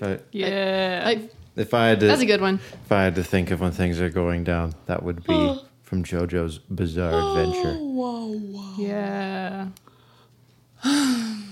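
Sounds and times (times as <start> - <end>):
speech: 0.0 - 9.9, 10.8 - 11.4
person yawning: 10.8 - 11.5.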